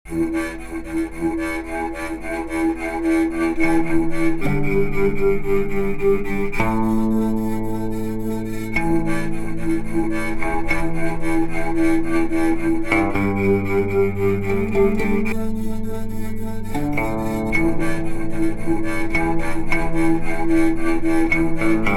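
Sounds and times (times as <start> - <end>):
Triboîtophone improvisation: 0.1 - 21.9.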